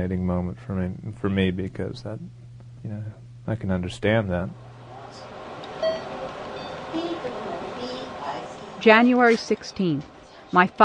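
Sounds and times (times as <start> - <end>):
speech: 0.0 - 5.3, 8.8 - 10.8
steady hum: 0.0 - 10.8
electronic beep in a hospital during chemotherapy: 5.8 - 6.8.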